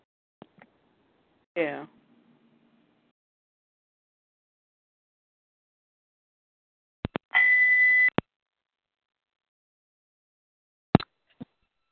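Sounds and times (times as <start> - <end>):
speech: 1.6 - 2.0
Skype incoming call tone electronic beep: 7.4 - 8.2.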